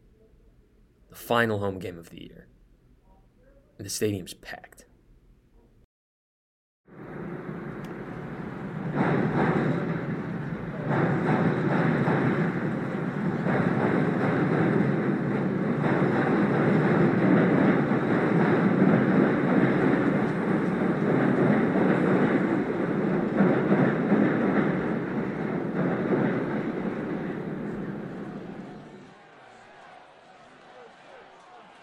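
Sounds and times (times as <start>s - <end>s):
speech: 1.1s - 2.6s, 3.8s - 4.9s
Chicago Union railway train rumbling past on tracks in Evanston: 6.9s - 29.1s.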